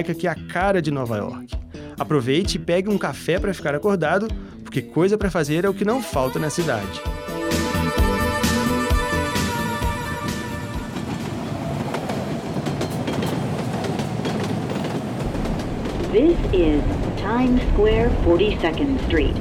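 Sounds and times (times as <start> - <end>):
speech: 0.0 - 7.1, 16.2 - 19.3
New York subway train rumbling along: 7.8 - 19.3.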